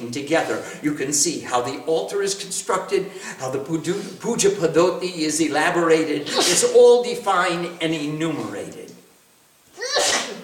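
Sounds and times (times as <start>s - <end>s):
speech: 0.0s - 8.8s
person sneezing: 6.2s - 6.7s, 9.8s - 10.4s.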